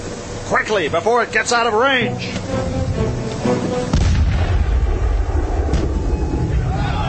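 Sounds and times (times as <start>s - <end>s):
low noise: 0.0s - 7.0s
speech: 0.5s - 3.0s
ship's forward cannon firing boom: 3.9s - 6.9s.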